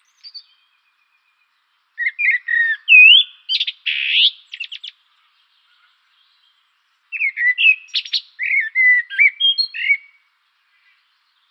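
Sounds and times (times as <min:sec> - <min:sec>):
Common blackbird Turdus merula singing: 0:00.0 - 0:11.4.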